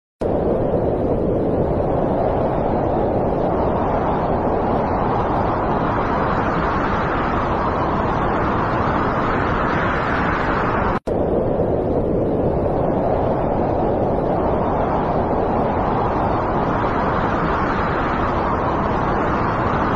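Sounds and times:
Martian wind: 0:00.2 - 0:19.9.

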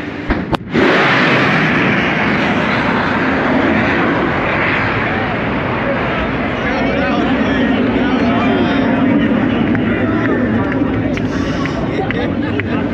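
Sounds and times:
sonic boom from breaking sound barrier: 0:00.1 - 0:06.3
laughter: 0:07.1 - 0:12.9.

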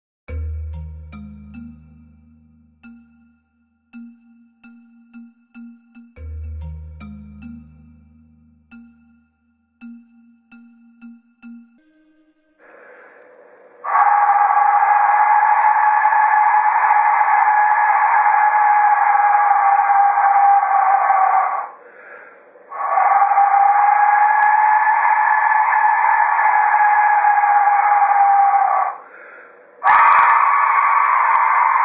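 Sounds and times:
Aztec death whistle: 0:13.8 - 0:21.8, 0:22.7 - 0:29.0, 0:29.8 - 0:31.8.

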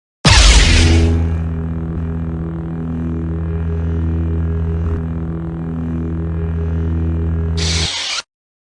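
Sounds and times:
lightsaber hum: 0:00.3 - 0:08.3.

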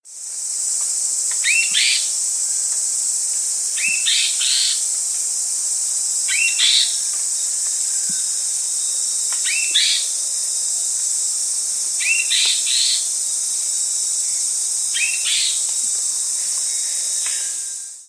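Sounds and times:
Guianan warbling antbird calling: 0:01.4 - 0:02.1, 0:03.8 - 0:04.9, 0:06.3 - 0:08.3, 0:09.4 - 0:10.1, 0:12.0 - 0:13.1, 0:15.0 - 0:15.7.

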